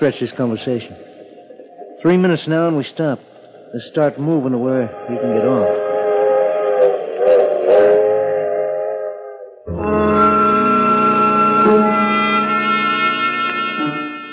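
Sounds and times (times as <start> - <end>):
speech: 0.0 - 1.1, 2.0 - 5.8
train whistle blowing as the train pulls away: 4.9 - 14.3.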